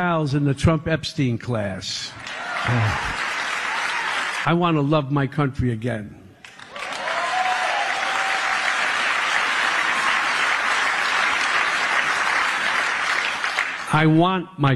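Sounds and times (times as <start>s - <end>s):
speech: 0.0s - 3.3s, 4.4s - 6.2s, 13.9s - 14.7s
applause from a large crowd: 2.2s - 4.5s, 6.5s - 14.1s.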